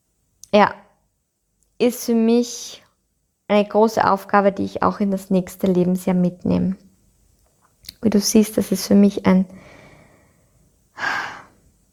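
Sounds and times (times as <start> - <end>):
speech: 0.5 - 0.8, 1.8 - 2.8, 3.5 - 6.9, 7.8 - 9.8
person taking a breath during a pause in speech: 9.5 - 11.7.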